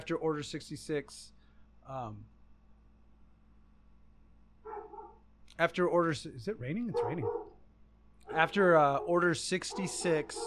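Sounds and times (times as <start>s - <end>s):
speech: 0.1s - 2.4s, 5.6s - 7.4s, 8.3s - 10.4s
dog barking: 4.6s - 5.2s, 6.8s - 7.6s, 8.3s - 10.4s.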